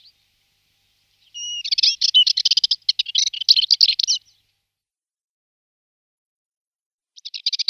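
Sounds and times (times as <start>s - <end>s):
subalpine warbler giving scratchy fast warbling phrases: 1.4s - 4.2s.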